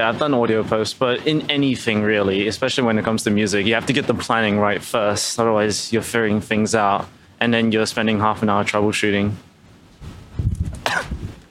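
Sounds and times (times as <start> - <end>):
speech: 0.0 - 10.1
person coughing: 10.8 - 11.3.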